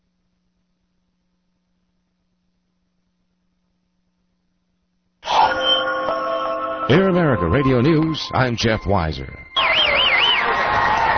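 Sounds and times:
high warbling whistle: 5.2 - 11.1
speech: 6.9 - 9.5
large crowd cheering along a presidential inauguration parade route: 9.6 - 11.1.

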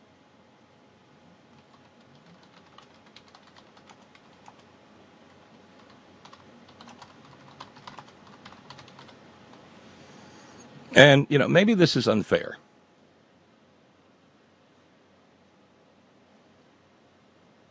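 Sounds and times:
soft hiss: 0.0 - 17.7
rapid typing on a computer keyboard: 1.5 - 4.7, 5.3 - 9.6
speech: 11.0 - 12.7.

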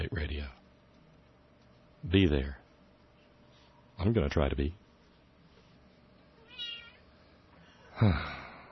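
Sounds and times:
speech: 2.1 - 2.6, 4.0 - 4.8, 8.0 - 8.4
cat meowing: 6.4 - 7.0.

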